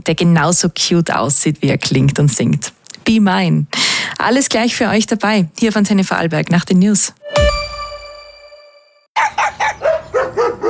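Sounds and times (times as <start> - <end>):
speech: 0.0 - 7.7
chime-like tone: 7.2 - 9.1
dog barking: 9.2 - 10.6.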